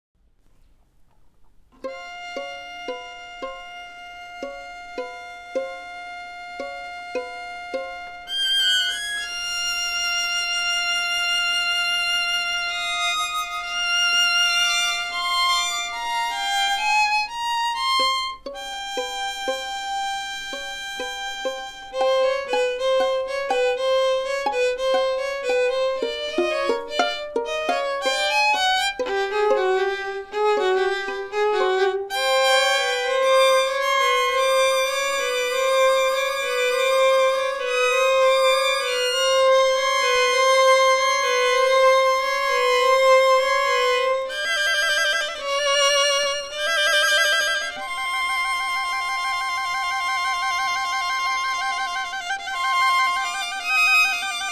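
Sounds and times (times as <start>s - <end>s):
violin strings playing: 1.7s - 54.5s.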